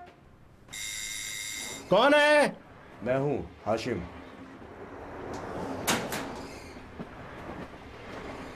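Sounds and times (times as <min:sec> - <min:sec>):
speech: 0:01.9 - 0:04.2
door sliding or swinging open and shut: 0:05.4 - 0:06.9.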